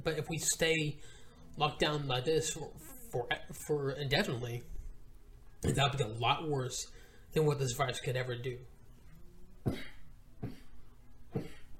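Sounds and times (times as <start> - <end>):
speech: 0.0 - 4.7, 5.6 - 8.7, 9.6 - 10.6
sharp coughs from a sudden tickle in the throat: 9.7 - 11.7.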